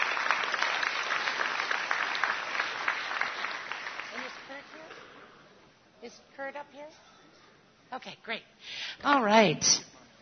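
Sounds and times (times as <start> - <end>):
audience applause of many hands clapping: 0.0 - 4.9
speech: 6.5 - 7.2, 7.9 - 9.9.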